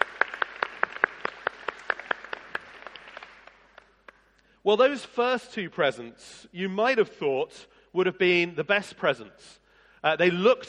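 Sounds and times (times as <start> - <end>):
audience applauding: 0.0 - 4.2
speech: 4.6 - 10.6.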